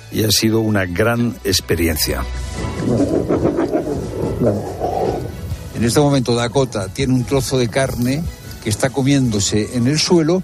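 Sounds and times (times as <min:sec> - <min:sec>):
speech: 0:00.1 - 0:03.4, 0:04.4 - 0:04.9, 0:05.8 - 0:10.4
Iberian wolves growling and snarling over meat at a wolf centre: 0:02.6 - 0:05.9.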